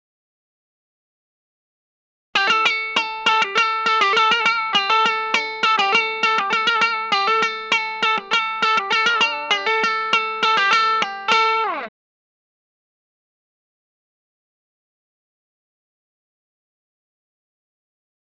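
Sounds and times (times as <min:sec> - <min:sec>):
open chords on Tele guitar through Vox AC4TV amplifier: 0:02.4 - 0:11.9.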